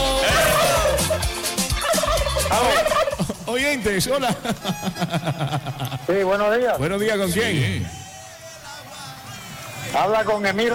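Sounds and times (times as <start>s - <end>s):
turkey gobbling: 0.2s - 3.5s
laughter: 0.2s - 6.5s
speech: 3.5s - 8.0s, 9.9s - 10.7s.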